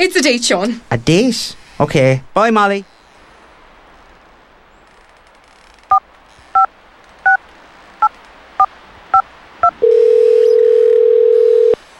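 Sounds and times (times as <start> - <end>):
speech: 0.0 - 3.0
telephone keypad beeps as a number is dialled: 9.6 - 11.8.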